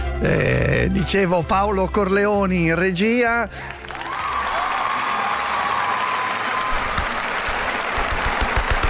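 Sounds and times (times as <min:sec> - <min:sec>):
speech: 0:00.2 - 0:03.8
sustained crowd applause: 0:03.6 - 0:08.8
louder individual claps: 0:03.8 - 0:08.8.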